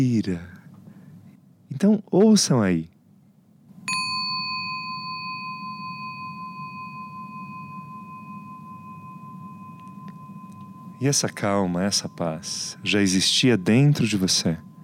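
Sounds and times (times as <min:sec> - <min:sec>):
speech: 0:00.0 - 0:00.6, 0:01.7 - 0:02.9, 0:11.0 - 0:14.7
low hum: 0:00.0 - 0:14.8
meditation bell ringing: 0:03.9 - 0:14.8.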